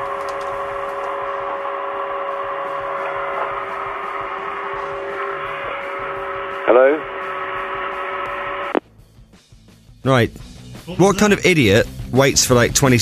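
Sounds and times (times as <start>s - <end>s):
vacuum cleaner droning over a telephone line: 0.0s - 8.8s
speech: 10.1s - 13.0s.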